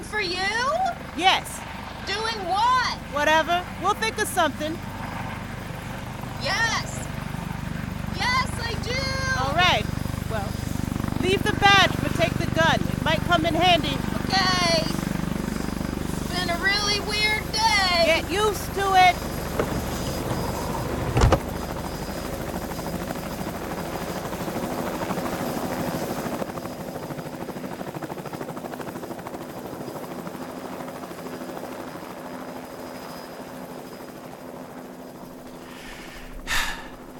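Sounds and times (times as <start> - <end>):
helicopter rotor and engine whir overhead: 0.0 - 37.1
speech: 1.2 - 4.9, 6.4 - 6.9, 8.6 - 10.6, 11.2 - 12.0, 12.6 - 15.0, 16.4 - 19.8
sharp thump: 21.1 - 21.5.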